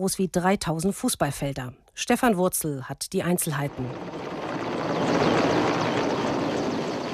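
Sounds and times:
speech: 0.0s - 4.2s
firefighting helicopters flying low overhead: 3.5s - 7.1s
firefighting aircraft flying low overhead: 3.7s - 7.1s.

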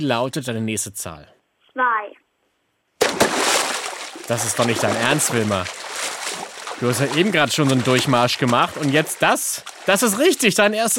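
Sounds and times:
speech: 0.0s - 1.9s, 4.3s - 5.8s, 6.8s - 10.9s
loud splash of someone jumping into water: 3.0s - 10.4s.

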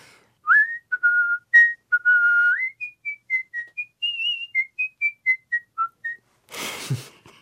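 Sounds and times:
person art-whistling a theme melody: 0.4s - 6.2s.

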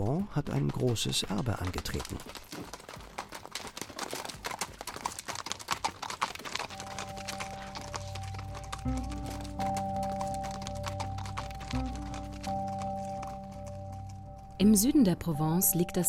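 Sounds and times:
horse hooves clip-clopping: 0.0s - 15.5s
speech: 0.1s - 2.6s, 14.6s - 16.0s
steady music with sustained tones: 6.8s - 16.0s.

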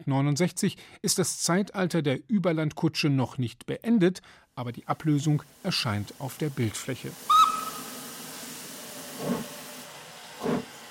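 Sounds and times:
speech: 0.0s - 7.4s
steady broadband hiss of a steam locomotive: 4.9s - 10.8s.

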